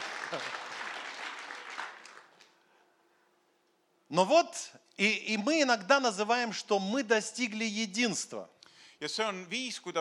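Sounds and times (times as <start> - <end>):
audience applause at a bilingual talk: 0.0 - 2.4
speech: 0.3 - 0.6, 4.1 - 9.9.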